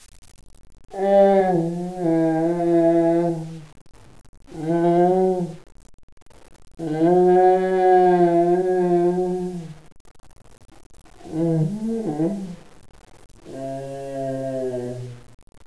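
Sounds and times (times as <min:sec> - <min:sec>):
ambience: 0:00.0 - 0:15.6
groans: 0:00.9 - 0:03.8, 0:04.5 - 0:05.7, 0:06.8 - 0:09.8, 0:11.2 - 0:12.7, 0:13.4 - 0:15.4.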